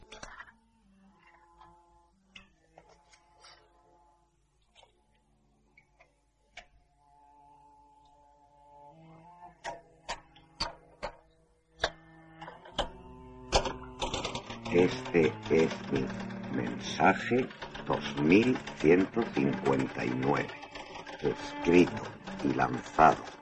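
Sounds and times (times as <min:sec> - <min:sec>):
soft tonal hum: 0:00.0 - 0:23.4
typewriter keys clacking: 0:13.5 - 0:23.4
speech: 0:14.8 - 0:20.6, 0:21.2 - 0:23.4.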